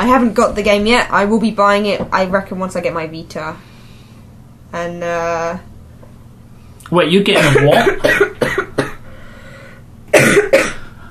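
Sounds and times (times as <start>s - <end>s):
speech: 0.0s - 3.7s, 4.7s - 5.7s, 6.9s - 8.3s
person coughing: 7.3s - 9.0s, 10.1s - 11.0s.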